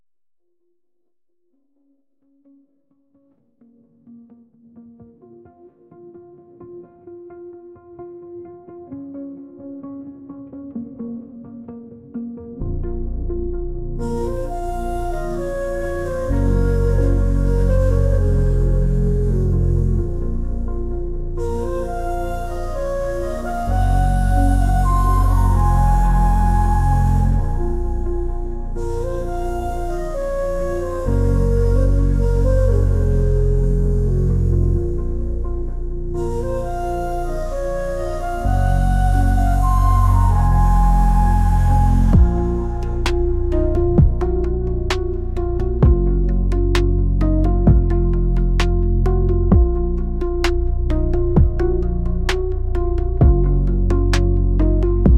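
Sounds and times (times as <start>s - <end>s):
gritty didgeridoo: 13.0s - 55.1s.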